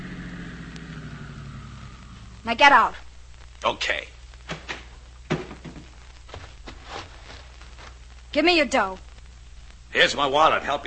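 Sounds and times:
car engine idling as the car pulls to a stop: 0.0s - 3.3s
speech: 2.4s - 3.0s, 3.6s - 4.2s, 8.4s - 9.1s, 9.9s - 10.8s.

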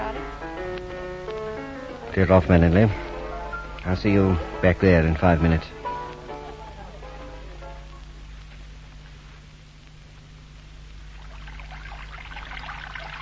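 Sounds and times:
low electrical hum: 0.0s - 13.2s
speech: 2.1s - 3.1s, 3.8s - 5.8s
water running steadily from a tap: 11.2s - 13.2s.

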